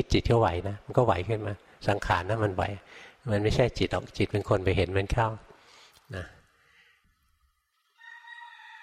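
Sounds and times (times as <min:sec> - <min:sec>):
speech: 0:00.0 - 0:05.5, 0:06.1 - 0:06.4
rooster crowing: 0:08.0 - 0:08.8.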